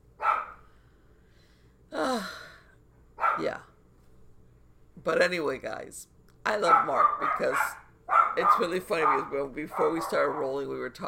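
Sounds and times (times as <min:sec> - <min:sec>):
dogs barking: 0:00.2 - 0:00.6, 0:03.2 - 0:03.5, 0:06.6 - 0:10.7
speech: 0:05.0 - 0:07.8, 0:08.4 - 0:11.0.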